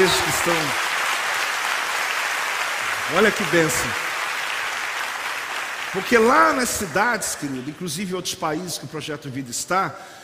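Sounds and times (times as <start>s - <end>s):
congregation applauding: 0.0s - 8.0s
speech: 0.1s - 0.9s, 3.1s - 4.0s, 5.9s - 10.2s.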